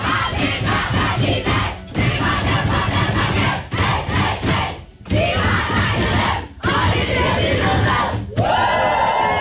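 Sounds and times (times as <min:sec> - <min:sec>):
women's football team shouting, whooping and chanting in a locker room after a win: 0:00.0 - 0:09.3.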